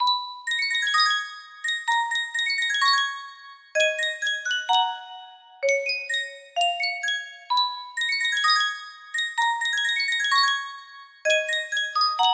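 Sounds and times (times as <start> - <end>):
Sankyo custom tune music box melody: 0.0 - 12.3.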